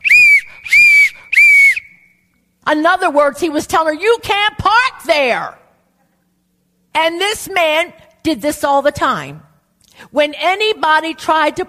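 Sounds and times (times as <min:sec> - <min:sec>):
person imitating a man blowing a whistle with shrill blasts: 0:00.0 - 0:02.2
speech: 0:02.7 - 0:05.6, 0:07.0 - 0:11.6.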